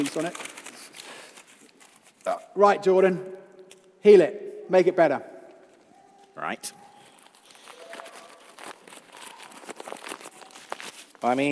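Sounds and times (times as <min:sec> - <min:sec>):
speech: 0:00.0 - 0:00.6, 0:02.3 - 0:03.4, 0:04.0 - 0:05.3, 0:06.4 - 0:06.8, 0:11.2 - 0:11.5
sheet of paper crumpled and pressed flat: 0:00.0 - 0:02.5, 0:05.6 - 0:11.5.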